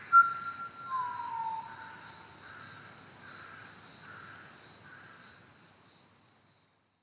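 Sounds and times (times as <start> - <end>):
pied butcherbird song at Ormiston Gorge: 0.1 - 2.2.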